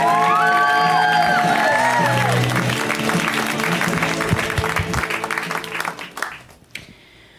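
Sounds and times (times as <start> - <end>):
audience whoops and high shouts: 0.0 - 2.4
live comedy show audience applause: 0.0 - 6.7.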